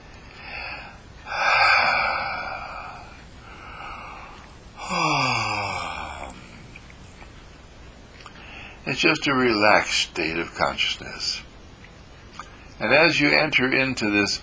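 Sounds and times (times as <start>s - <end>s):
person taking slow deep breaths in and out: 0.0s - 6.8s, 8.2s - 8.9s
speech: 8.9s - 11.4s, 12.8s - 14.4s.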